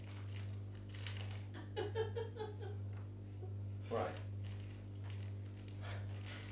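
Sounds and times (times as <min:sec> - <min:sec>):
crumpled plastic grab bag packet being smoothed out: 0:00.0 - 0:01.6, 0:03.9 - 0:06.4
steady low electrical hum: 0:00.0 - 0:06.4
laughter: 0:01.6 - 0:02.8.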